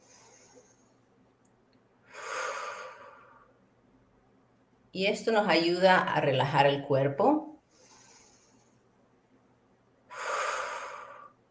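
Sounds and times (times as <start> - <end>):
deep breath in through the nose and out through the mouth during a relaxation exercise: 0.0 - 1.1, 2.0 - 3.6, 7.6 - 8.9, 10.1 - 11.4
speech: 5.0 - 7.5.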